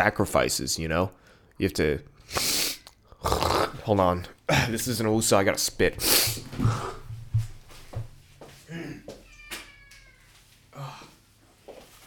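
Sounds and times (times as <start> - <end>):
speech: 0.0 - 2.5, 3.2 - 7.0
soft knocks: 6.4 - 8.3
male pet cat crying with drawn-out mid-pitched meows: 9.1 - 10.4.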